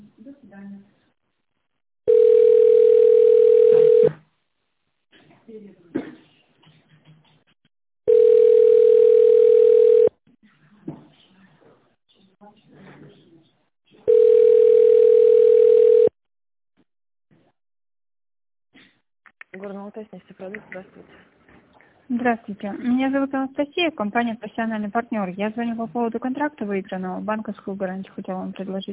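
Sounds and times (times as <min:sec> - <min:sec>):
telephone tone while calling someone back: 0:02.1 - 0:04.2, 0:08.1 - 0:10.1, 0:14.1 - 0:16.1
speech: 0:22.2 - 0:28.9.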